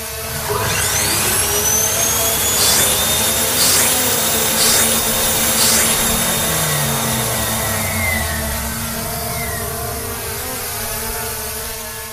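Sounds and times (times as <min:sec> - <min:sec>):
apples sucked into a vacuum cleaner: 0:00.0 - 0:10.8
vacuum cleaner running: 0:00.0 - 0:12.1.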